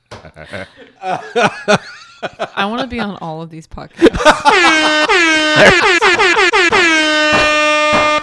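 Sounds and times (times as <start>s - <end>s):
laughter: 0.2s - 6.7s
speech: 0.4s - 6.0s
air horn sound effect blasts: 4.4s - 8.2s.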